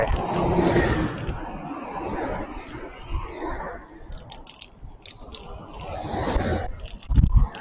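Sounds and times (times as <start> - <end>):
wire lock rattling against bicycle ridden down a slope onto a riverside cycling path: 0.0 - 1.6, 3.9 - 5.9, 6.7 - 7.6
headwind rumble: 0.0 - 7.6
road noise on riverside cycling path: 0.0 - 7.6.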